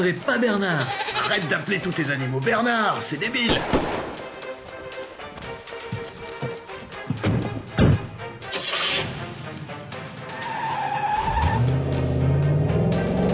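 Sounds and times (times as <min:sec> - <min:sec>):
speech: 0:00.0 - 0:04.0
heavy thud: 0:07.1 - 0:08.2
tires skidding: 0:08.5 - 0:13.3
car and truck engines revving in a pursuit: 0:10.2 - 0:13.3
deep engine drone: 0:11.6 - 0:13.3.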